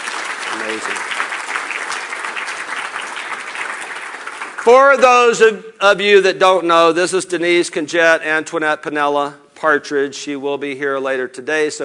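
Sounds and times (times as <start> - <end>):
audience applause: 0.0 - 5.2
speech: 0.6 - 1.2, 4.6 - 11.8.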